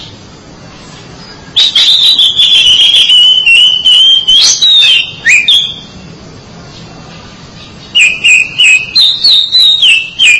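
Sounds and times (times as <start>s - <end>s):
background hiss: 0.0s - 10.3s
Oriental magpie-robin whistling: 1.2s - 6.0s, 7.9s - 10.3s.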